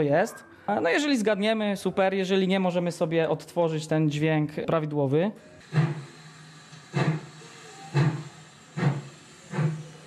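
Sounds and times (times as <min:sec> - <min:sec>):
speech: 0:00.0 - 0:06.0
distorted sound of a train starting to move: 0:05.5 - 0:10.0.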